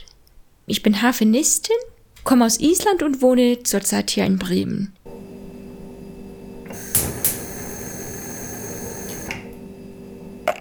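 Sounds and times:
speech: 0:00.7 - 0:05.0
refrigerator humming: 0:05.1 - 0:10.5
sharp clicks: 0:06.7 - 0:09.6.

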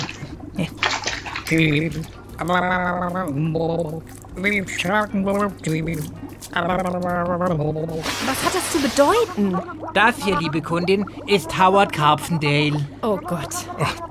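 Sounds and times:
water sloshing and pouring as a fish is lifted out: 0:00.0 - 0:14.0
speech: 0:01.5 - 0:14.0.

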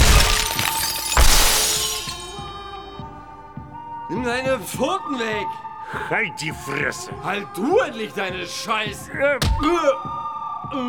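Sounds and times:
falling glass shards tinkling: 0:00.0 - 0:02.4
glass shattering: 0:00.0 - 0:02.5
speech: 0:04.2 - 0:10.8.

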